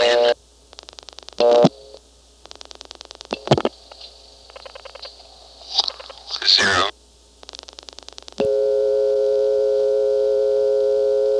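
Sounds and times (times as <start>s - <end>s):
steady telephone line hum on answered trunk: 0.0s - 11.3s
burst of sharp clicks on a telephone line: 0.7s - 1.7s, 2.4s - 5.2s, 7.4s - 8.4s.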